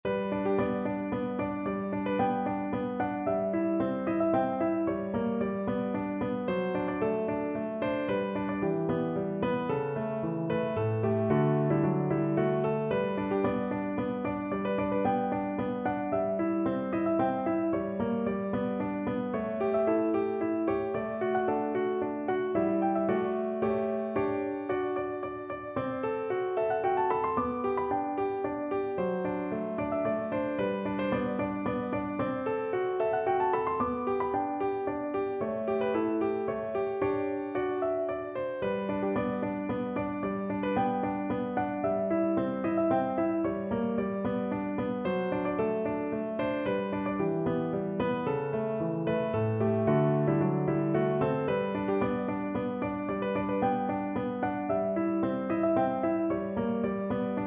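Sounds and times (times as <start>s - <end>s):
piano sonatina: 0.0s - 57.4s.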